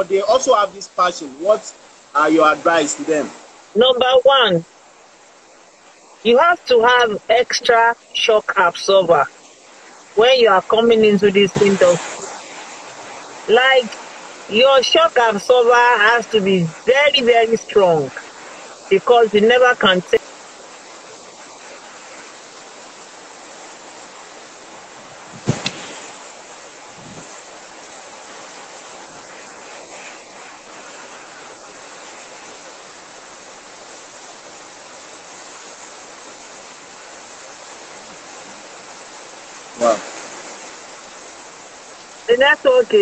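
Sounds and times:
speech: 0.0 - 4.7, 6.2 - 9.4, 10.2 - 12.1, 13.5 - 18.3, 18.9 - 20.3, 42.4 - 42.9
steady rain: 0.0 - 42.9
sharp knocks: 25.3 - 26.1.

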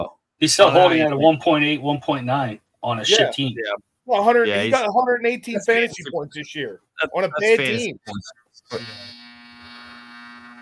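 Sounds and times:
speech: 0.4 - 9.2
loud electronic buzzer with harsh rasping tone: 8.7 - 10.6.

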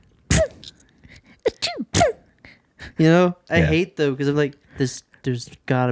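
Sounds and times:
person imitating small held-back sneezes: 0.3 - 0.8, 1.4 - 2.3
speech: 3.0 - 5.9.

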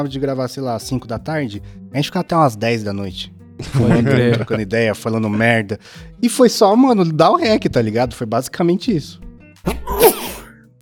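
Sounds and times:
speech: 0.0 - 10.2
laughter: 3.6 - 5.4
person sneezing: 9.7 - 10.6.

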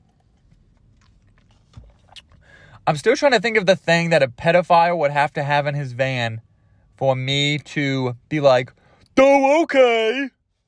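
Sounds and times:
sipping and swallowing water: 1.0 - 2.4
speech: 2.9 - 10.4.

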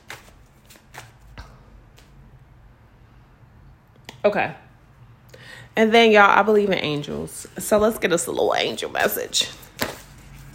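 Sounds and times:
cards being shuffled for a card reading: 0.0 - 2.2, 9.0 - 10.5
speech: 4.2 - 4.6, 5.8 - 9.6.

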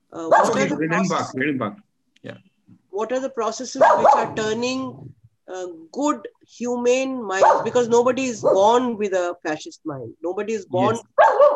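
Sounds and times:
speech: 0.1 - 11.4
dog barking in yelping bursts: 0.3 - 0.8, 3.8 - 4.4, 7.4 - 7.8, 11.0 - 11.5.

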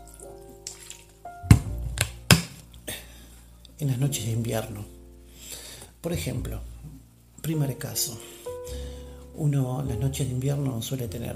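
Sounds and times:
tea bag lifted out of heated water after steeping: 0.0 - 2.8
water dripping from a tea bag: 0.0 - 3.8
speech: 3.8 - 5.0, 6.0 - 6.7, 7.4 - 8.3, 9.4 - 11.3.

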